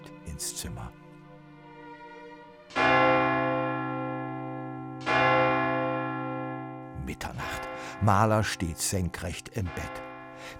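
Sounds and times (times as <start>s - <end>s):
speech: 0.4s - 1.0s, 7.1s - 10.5s
church tower bell striking midnight: 2.7s - 10.5s.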